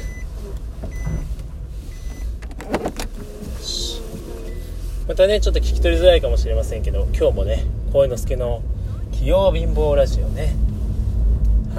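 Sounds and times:
car engine rumble inside a car setting off: 0.0s - 11.7s
clunks and clicks inside a car: 2.1s - 3.5s
speech: 5.2s - 10.7s.

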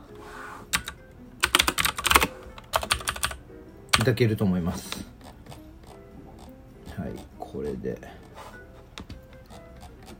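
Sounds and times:
typing on a computer keyboard: 0.8s - 4.1s
speech: 4.0s - 5.2s, 7.1s - 8.2s.

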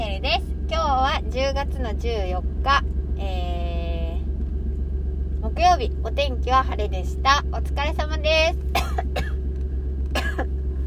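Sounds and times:
steady low hum: 0.0s - 10.8s
speech: 1.4s - 3.4s, 5.6s - 9.1s
person coughing in sharp clusters: 8.7s - 9.4s, 10.1s - 10.6s.

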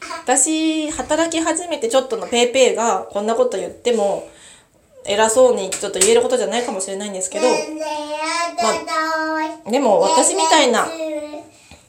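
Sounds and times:
speech: 0.3s - 4.4s, 5.0s - 11.4s
young child chattering and vocalizing: 7.4s - 11.5s.

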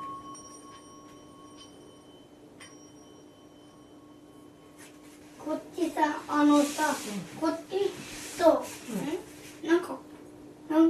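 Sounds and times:
Buddhist orin singing bowl ringing: 0.0s - 6.6s
speech: 5.4s - 9.2s.

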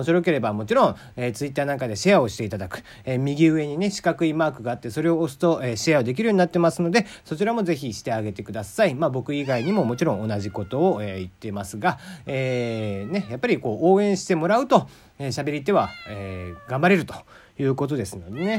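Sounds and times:
speech: 0.0s - 18.5s
cat meowing: 9.3s - 11.4s, 12.3s - 13.8s, 15.6s - 17.1s, 18.1s - 18.5s.

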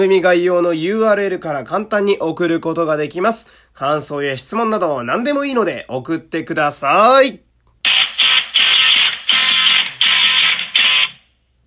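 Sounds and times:
speech: 0.0s - 8.0s
short bright electronic app jingle: 7.9s - 11.2s.

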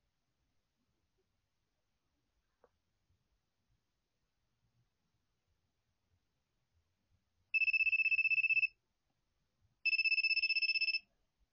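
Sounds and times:
smartphone ringtone trilling in rapid electronic pulses: 7.6s - 8.7s, 9.9s - 11.0s.

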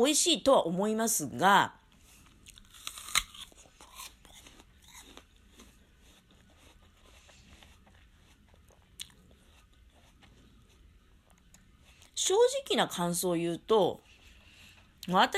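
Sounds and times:
speech: 0.0s - 1.8s, 12.3s - 14.1s, 15.1s - 15.3s
biting and chewing a large heavy sweet apple: 2.2s - 12.2s.

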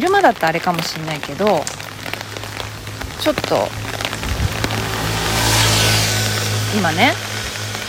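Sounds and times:
speech: 0.0s - 1.9s, 3.2s - 4.0s, 6.7s - 7.3s
broad road noise: 0.0s - 7.8s
food delivery scooter passing on a street: 1.7s - 7.8s.

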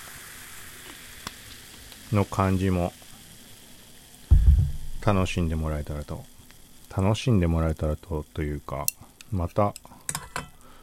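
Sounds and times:
carbonated highball drink fizzing with crackling hiss: 0.0s - 2.2s
speech: 2.1s - 3.0s, 5.0s - 6.3s, 6.9s - 9.9s
dull low thump: 4.3s - 5.2s.

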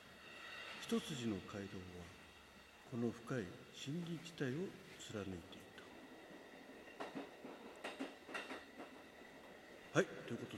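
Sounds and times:
speech: 0.9s - 2.2s, 2.9s - 5.7s, 10.0s - 10.5s
train wheels clattering on rails: 5.9s - 10.5s.

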